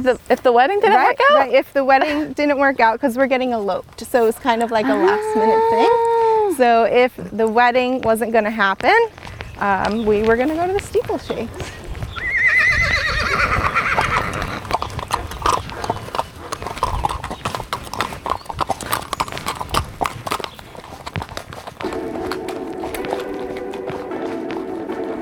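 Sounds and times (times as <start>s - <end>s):
rustling and movement noise: 0.0s - 4.9s, 8.3s - 25.0s
speech: 0.0s - 11.8s
horse hooves clip-clopping during a horse ride: 0.0s - 25.1s
horse whinnying: 4.2s - 6.6s, 11.6s - 23.8s.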